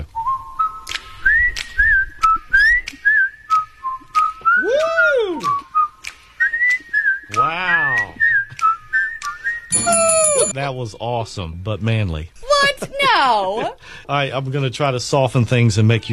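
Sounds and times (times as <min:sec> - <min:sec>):
person whistling a bright bouncy theme tune: 0:00.2 - 0:10.6
speech: 0:10.6 - 0:16.1.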